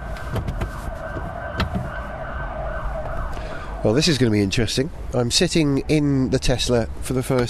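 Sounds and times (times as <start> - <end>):
faint siren-like tone: 0.0 - 4.2
city traffic rumble on a street in central London on a cold December morning: 0.0 - 7.4
sharp clicks and knocks: 0.2 - 2.0
speech: 3.8 - 7.4.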